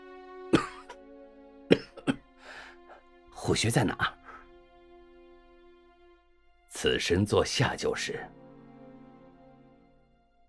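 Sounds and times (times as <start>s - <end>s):
person coughing: 0.5s - 1.0s, 1.7s - 2.2s
throat clearing: 0.6s - 1.0s, 1.7s - 2.2s
speech: 1.7s - 2.0s, 3.4s - 4.2s, 6.8s - 8.4s.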